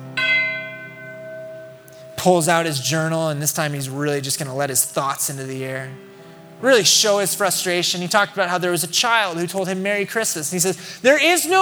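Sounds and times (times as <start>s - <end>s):
church bell strike: 0.0s - 8.2s
speech: 2.2s - 11.6s.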